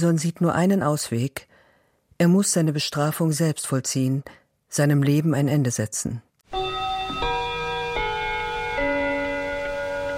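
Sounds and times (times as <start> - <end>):
speech: 0.0 - 1.5, 2.2 - 6.6
grandfather clock chiming in a club: 6.5 - 10.1.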